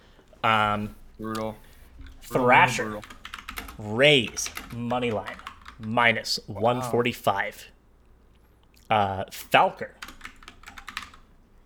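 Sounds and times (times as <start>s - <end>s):
speech: 0.4s - 3.2s, 3.8s - 7.7s, 8.9s - 10.0s
fast computer keyboard typing: 1.3s - 6.0s, 10.0s - 11.3s.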